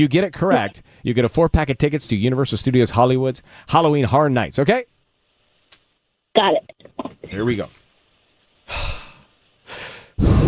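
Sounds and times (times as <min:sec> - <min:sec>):
speech: 0:00.0 - 0:04.9, 0:06.4 - 0:07.8, 0:08.7 - 0:09.0
deep forceful breaths of a pre-show breathing exercise before singing: 0:08.7 - 0:10.4.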